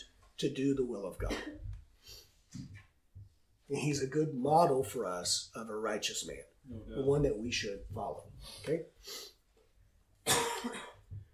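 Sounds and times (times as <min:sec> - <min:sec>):
speech: 0:00.4 - 0:02.7, 0:03.7 - 0:09.3, 0:10.6 - 0:10.9
person coughing in a coughing fit: 0:01.2 - 0:01.8, 0:10.3 - 0:11.1.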